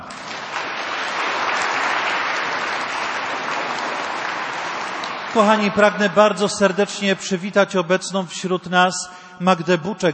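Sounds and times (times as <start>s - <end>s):
audience applause: 0.0s - 5.9s
speech: 5.3s - 10.1s.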